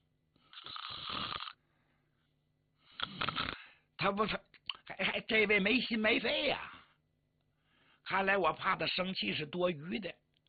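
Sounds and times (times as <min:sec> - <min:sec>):
man's voice imitating snoring of a man asleep in a chair: 0:00.5 - 0:01.6, 0:03.0 - 0:03.6
speech: 0:04.0 - 0:04.4, 0:05.0 - 0:06.7, 0:08.1 - 0:10.2.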